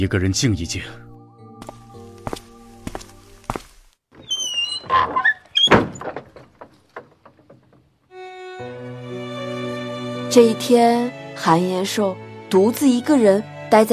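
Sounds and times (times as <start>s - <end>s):
speech: 0.0s - 1.0s, 10.3s - 13.9s
door closing in an official's room: 4.8s - 7.9s.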